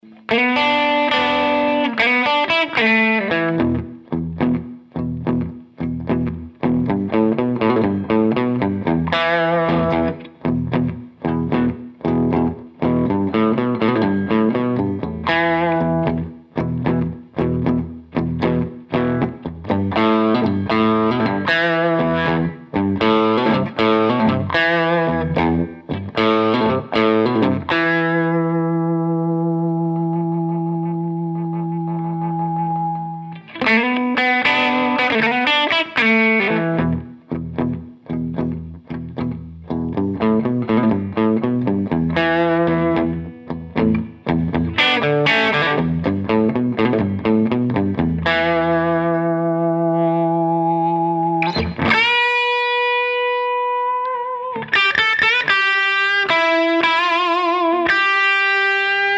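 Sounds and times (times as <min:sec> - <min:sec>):
1967 JTM45 guitar amplifier: 0:00.0 - 0:59.1.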